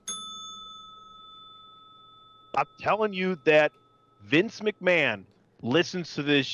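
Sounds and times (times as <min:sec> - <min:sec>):
bell ringing: 0:00.0 - 0:05.2
speech: 0:02.6 - 0:06.5.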